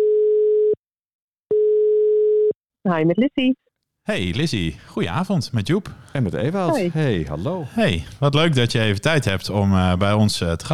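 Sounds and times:
telephone ringing tone while a call is placed: 0:00.0 - 0:00.8, 0:01.5 - 0:02.6
speech: 0:02.8 - 0:10.7.

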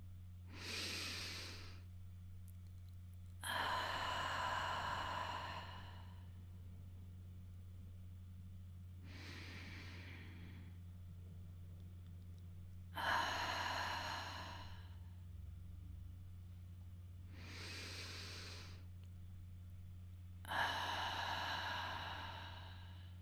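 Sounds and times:
steady low hum: 0:00.0 - 0:23.1
slow deep breathing in and out: 0:00.5 - 0:01.8, 0:03.4 - 0:06.5, 0:09.0 - 0:10.9, 0:13.0 - 0:15.2, 0:17.3 - 0:19.0, 0:20.5 - 0:23.1.

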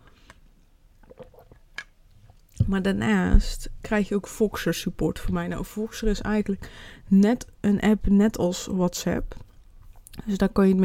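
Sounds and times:
person sipping water: 0:01.0 - 0:01.6, 0:09.4 - 0:10.2
speech: 0:02.7 - 0:09.4, 0:10.2 - 0:10.8
soft wet mouth sounds: 0:09.4 - 0:10.3.

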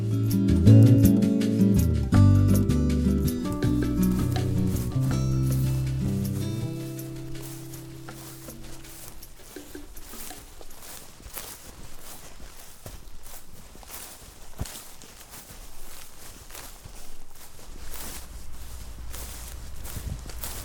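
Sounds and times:
footsteps of people walking on an outdoor path through a valley: 0:00.0 - 0:20.6
soft breezy rustle of surroundings: 0:00.0 - 0:20.6.

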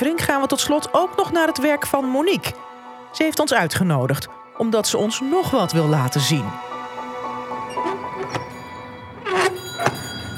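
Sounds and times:
speech: 0:00.0 - 0:06.8
large heavy door closing with a thunk: 0:07.4 - 0:10.3.

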